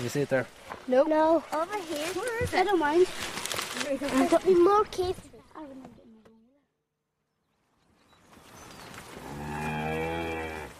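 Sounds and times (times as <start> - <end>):
speech: 0.0 - 6.0
cattle mooing in a field on a riverbank: 9.2 - 10.7.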